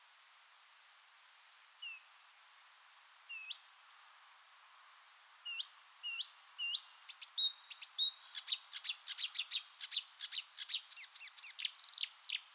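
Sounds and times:
marsh warbler song: 0:05.4 - 0:12.5.

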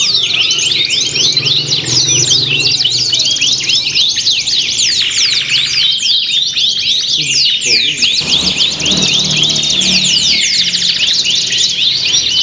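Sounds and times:
canaries singing in a crowded chorus in a simulated singing contest: 0:00.0 - 0:12.4
faint low drone: 0:08.2 - 0:10.9.

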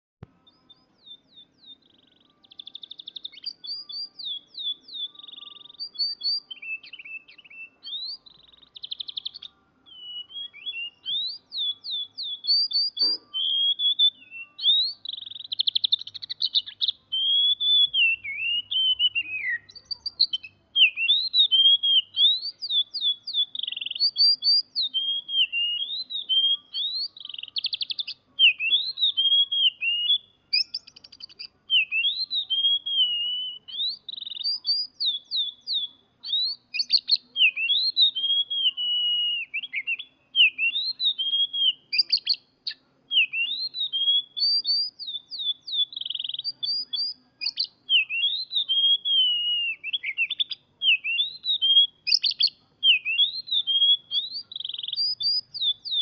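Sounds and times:
kacer singing tembakan kenari song: 0:00.0 - 0:56.0.

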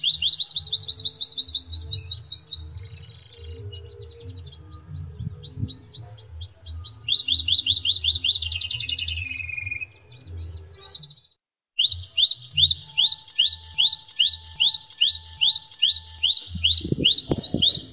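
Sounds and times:
Atlantic canary singing Indonesian trained song with isian glawing filler: 0:00.0 - 0:17.9.

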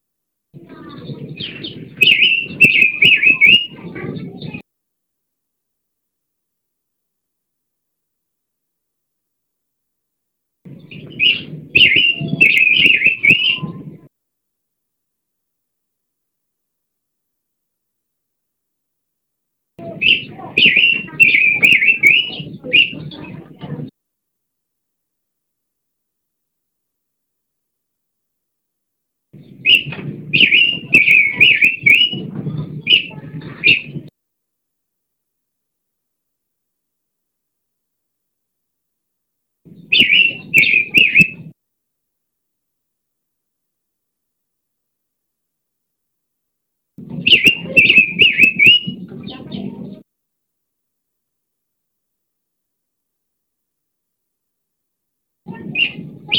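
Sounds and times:
pancawarna bird calling: 0:00.8 - 0:04.6, 0:10.7 - 0:13.8, 0:19.8 - 0:23.4, 0:29.4 - 0:32.3, 0:32.9 - 0:34.0, 0:39.7 - 0:41.5, 0:47.1 - 0:49.6, 0:55.7 - 0:56.3.

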